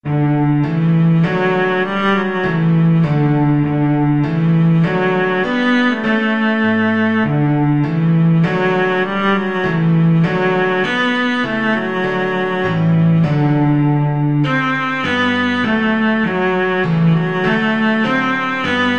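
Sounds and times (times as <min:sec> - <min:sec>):
cello playing: 0:00.0 - 0:18.9.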